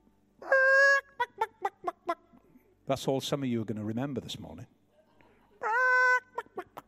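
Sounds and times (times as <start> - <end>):
voice imitating chicken clucking: 0.4 - 2.4, 5.6 - 6.8
speech: 2.9 - 4.8.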